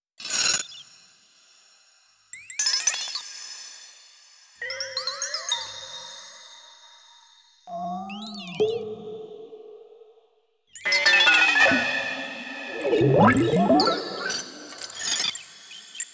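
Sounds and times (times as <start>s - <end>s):
granular ambient texture: 7.7s - 10.1s, 11.0s - 15.3s.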